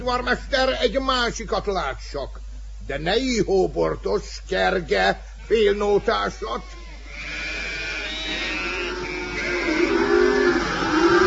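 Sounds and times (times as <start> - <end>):
speech: 0.0 - 6.8
donkeys braying in a palace: 5.3 - 11.2
sheep bleating in a palace: 5.4 - 11.2
pigs grunting in a palace: 6.7 - 11.2.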